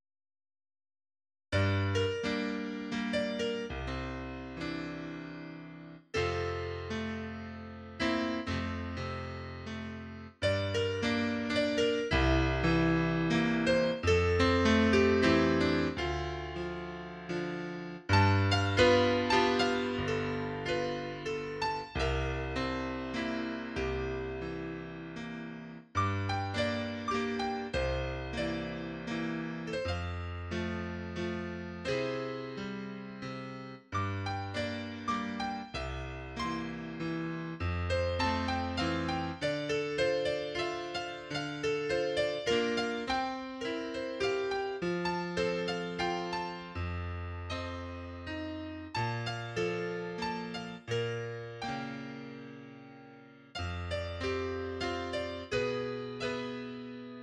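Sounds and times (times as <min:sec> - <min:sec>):
piano melody: 0:01.5 - 0:57.2.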